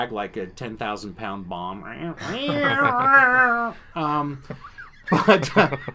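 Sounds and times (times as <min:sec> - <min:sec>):
speech: 0:00.0 - 0:05.9
laughter: 0:02.2 - 0:03.7, 0:04.4 - 0:05.9
person imitating a cat meow in a studio: 0:02.2 - 0:03.8.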